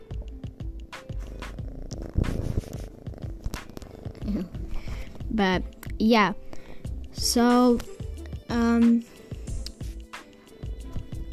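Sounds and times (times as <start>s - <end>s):
rustling: 1.1s - 5.2s
cat purring: 1.2s - 5.3s
speech: 5.4s - 6.4s, 7.2s - 7.9s, 8.5s - 9.1s.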